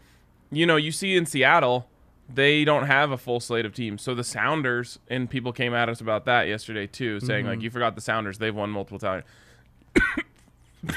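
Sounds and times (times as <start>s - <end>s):
speech: 0.5s - 10.2s
person coughing: 9.9s - 10.9s.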